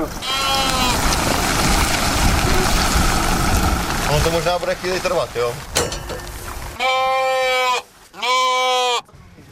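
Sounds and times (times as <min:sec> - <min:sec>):
faint outdoor noise: 0:00.0 - 0:09.4
sheep bleating with a wavering nasal tone: 0:00.2 - 0:01.0, 0:06.8 - 0:09.1
speech: 0:04.2 - 0:05.7.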